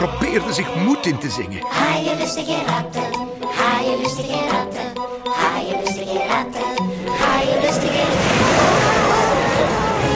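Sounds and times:
speech: 0.0s - 8.9s
waves crashing over a ship's deck: 7.7s - 10.1s.

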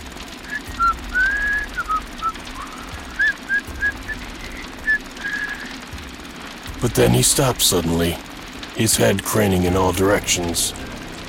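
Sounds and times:
steady low rumble: 0.0s - 11.2s
person whistling a light wandering tune: 0.5s - 5.7s
speech: 6.8s - 11.2s.

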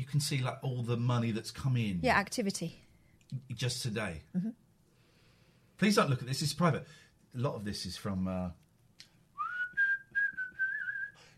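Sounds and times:
speech: 0.1s - 4.6s, 5.8s - 8.6s
person whistling a tune: 9.4s - 11.3s.

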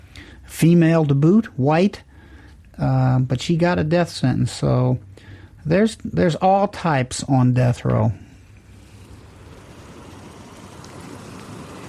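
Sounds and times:
speech: 0.6s - 2.1s, 2.8s - 8.2s
sea waves rolling in: 8.7s - 11.8s.

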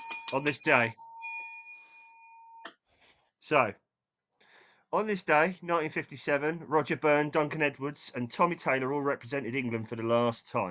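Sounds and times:
bell ringing: 0.0s - 2.6s
speech: 0.3s - 1.1s, 3.5s - 3.8s, 4.9s - 10.6s.

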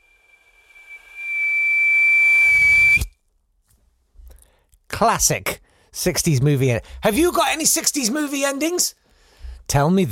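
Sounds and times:
high pure sustained whistling tone: 0.0s - 3.1s
speech: 5.0s - 9.0s, 9.7s - 10.1s.

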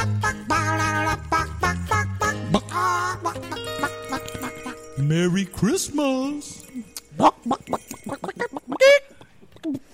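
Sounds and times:
person imitating a clucking chicken: 0.0s - 4.9s, 7.2s - 9.9s
loud drawn-out squawk imitating a chicken: 0.0s - 5.0s, 7.2s - 9.8s
speech: 5.1s - 7.7s.

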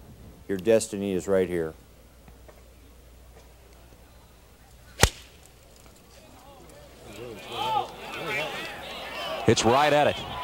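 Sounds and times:
speech: 0.5s - 1.8s, 9.5s - 10.3s
golf club swinging and striking the ball on a shot toward the pin: 4.9s - 5.5s
murmur of crowd voices and talk: 5.8s - 10.4s.

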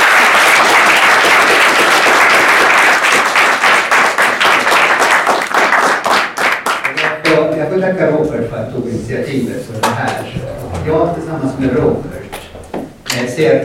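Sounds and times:
crowd applauding: 0.0s - 7.3s
speech: 7.9s - 12.2s, 13.4s - 13.6s.

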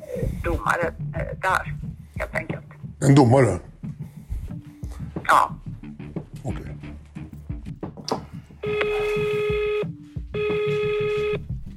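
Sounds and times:
speech: 0.2s - 3.7s, 5.3s - 5.6s, 6.4s - 6.7s
telephone dialing beeps: 8.6s - 11.4s
telephone electronic ringback tones: 8.6s - 11.4s.

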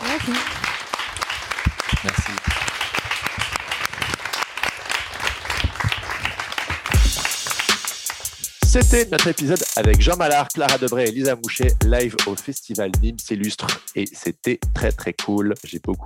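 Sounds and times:
sizable crowd applauding at a live show: 0.0s - 8.4s
speech: 0.2s - 0.6s, 8.7s - 16.0s.

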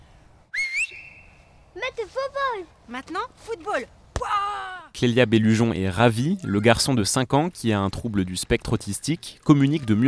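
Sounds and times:
short loud whistle at a children's football game: 0.5s - 1.4s
speech: 1.8s - 10.0s.

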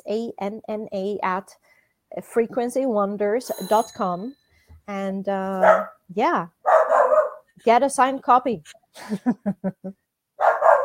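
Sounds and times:
speech: 0.1s - 6.8s, 7.6s - 10.0s
dog barking: 5.6s - 6.0s, 6.6s - 7.5s, 10.4s - 10.8s
laughter: 9.0s - 9.9s.

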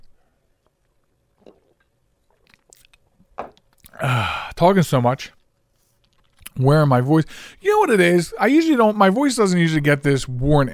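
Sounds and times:
sipping and slurping of a limeade drink: 1.4s - 4.0s
small wet mouth sounds: 1.4s - 4.0s
speech: 4.0s - 5.4s, 6.6s - 10.7s.

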